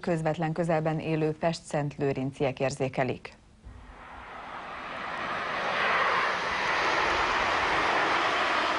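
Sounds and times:
speech: 0:00.0 - 0:03.4
low-flying airplane roar near airport: 0:03.6 - 0:08.7.

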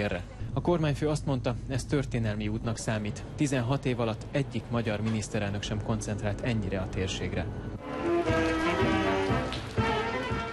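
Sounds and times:
low continuous tone: 0:00.0 - 0:07.8
speech: 0:00.0 - 0:08.5
rain falling on a cold day in Sarajevo: 0:07.8 - 0:10.5.

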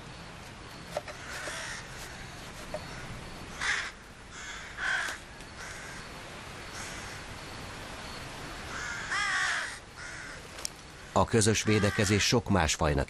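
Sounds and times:
steady hiss: 0:00.0 - 0:13.0
jackdaw calls from busy nesting colony during nest-building: 0:00.8 - 0:06.1, 0:08.7 - 0:12.2
speech: 0:11.2 - 0:13.0.

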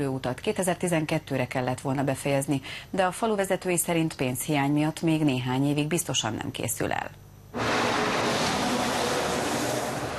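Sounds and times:
speech: 0:00.0 - 0:07.8
cars rushing past on a busy main road: 0:07.6 - 0:10.1.

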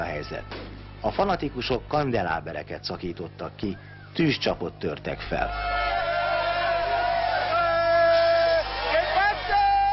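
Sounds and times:
speech: 0:00.1 - 0:05.8
dense loud street crowd in central Madrid cheering and shouting after a match: 0:05.4 - 0:09.9.

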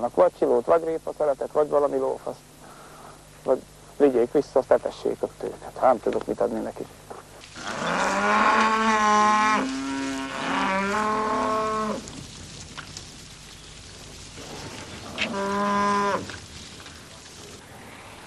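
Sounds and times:
speech: 0:00.0 - 0:02.5, 0:03.4 - 0:07.1
soft hiss: 0:00.0 - 0:18.2
cows mooing: 0:07.6 - 0:12.2, 0:14.4 - 0:16.5.

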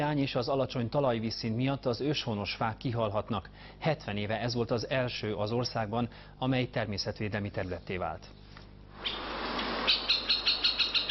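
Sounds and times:
speech: 0:00.0 - 0:08.4
woodpecker calling in a forest: 0:09.0 - 0:11.0.

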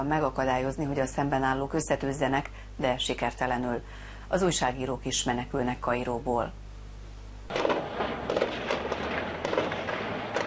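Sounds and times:
speech: 0:00.0 - 0:06.6
constant rumbling noise: 0:00.0 - 0:10.4
gunfire crackling during clashes between protesters in Cairo Egypt: 0:07.5 - 0:10.4.

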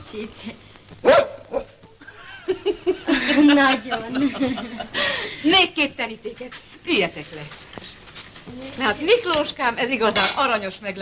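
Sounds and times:
speech: 0:00.1 - 0:01.3, 0:03.4 - 0:07.7, 0:08.4 - 0:11.0
dog barking: 0:01.0 - 0:01.8
laughter: 0:02.0 - 0:05.4.

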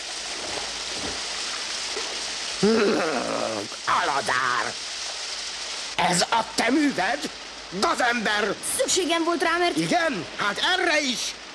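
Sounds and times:
thunderstorm rain hissing: 0:00.0 - 0:11.5
person calling out: 0:02.6 - 0:04.8
speech: 0:02.6 - 0:04.9, 0:06.0 - 0:11.4.

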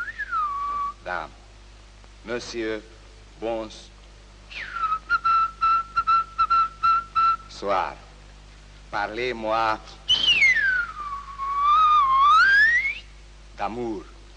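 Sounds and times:
person whistling a melody: 0:00.0 - 0:01.0, 0:04.5 - 0:07.5, 0:10.1 - 0:13.1
speech: 0:01.1 - 0:01.4, 0:02.2 - 0:03.9, 0:07.6 - 0:08.0, 0:08.9 - 0:10.0, 0:13.6 - 0:14.1.

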